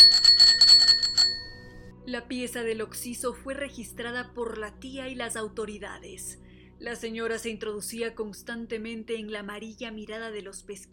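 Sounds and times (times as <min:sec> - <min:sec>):
small handbell on a baker's cart ringing: 0:00.0 - 0:01.8
speech: 0:02.1 - 0:10.9.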